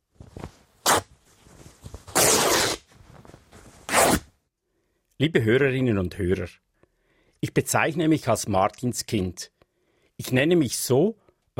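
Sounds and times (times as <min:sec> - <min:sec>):
coat fabric being torn apart: 0:00.3 - 0:04.4
speech: 0:05.2 - 0:06.7, 0:07.4 - 0:09.6, 0:10.2 - 0:11.5.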